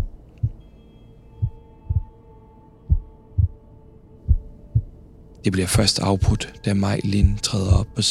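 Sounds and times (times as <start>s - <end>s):
heavy pounding heartbeat: 0.0s - 0.6s, 1.4s - 2.1s, 2.9s - 3.6s, 4.3s - 4.9s
faint droning hum: 0.0s - 8.0s
speech: 5.4s - 8.0s.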